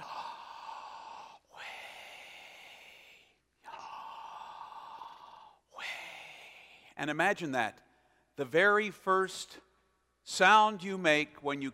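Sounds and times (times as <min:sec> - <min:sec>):
person breathing in deeply: 0:00.0 - 0:07.0
speech: 0:07.0 - 0:07.8, 0:08.4 - 0:09.6, 0:10.3 - 0:11.7.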